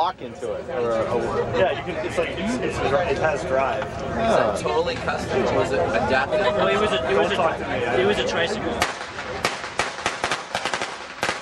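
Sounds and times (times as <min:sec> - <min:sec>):
speech: 0:00.0 - 0:09.0
firecracker pops: 0:08.8 - 0:11.3.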